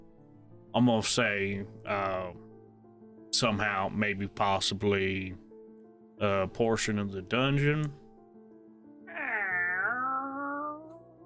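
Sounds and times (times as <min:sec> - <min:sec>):
speech: 0:00.7 - 0:02.4, 0:03.3 - 0:05.4, 0:06.2 - 0:08.0
cat meowing: 0:09.1 - 0:11.2.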